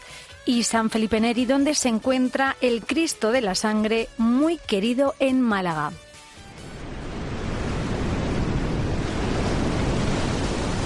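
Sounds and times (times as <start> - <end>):
speech: 0.5 - 6.0
crashing waves in a storm sound effect: 6.4 - 10.8
storm wind: 6.4 - 10.8.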